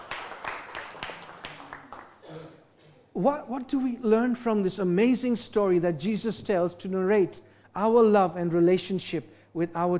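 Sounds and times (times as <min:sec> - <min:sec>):
audience clapping: 0:00.0 - 0:02.2
speech: 0:03.2 - 0:09.9.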